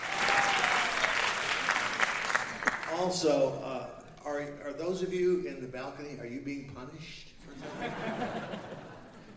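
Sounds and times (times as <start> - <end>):
audience applause: 0.0 - 3.0
speech: 3.0 - 8.6
laughter: 7.4 - 9.3.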